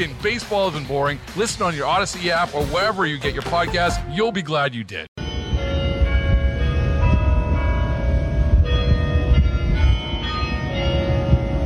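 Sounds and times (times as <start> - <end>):
speech: 0.0 - 5.2
University of Michigan bell tower bells playing a Jewish prayer melody: 3.5 - 4.5, 5.2 - 11.6.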